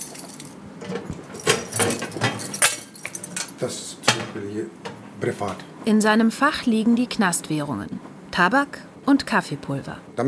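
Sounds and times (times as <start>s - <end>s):
heavy bunch of keys jangling: 0.0s - 0.6s, 1.4s - 3.6s
speech: 3.6s - 10.2s.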